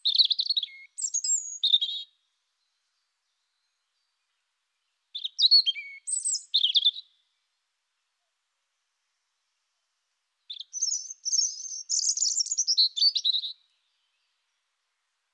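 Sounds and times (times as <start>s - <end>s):
European robin singing high warbled notes and fast high trills: 0.0s - 7.4s, 10.5s - 14.7s.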